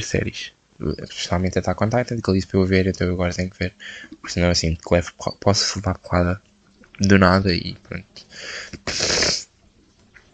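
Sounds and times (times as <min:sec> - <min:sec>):
speech: 0:00.0 - 0:09.4
sniffling through a stuffy nose: 0:08.3 - 0:09.5.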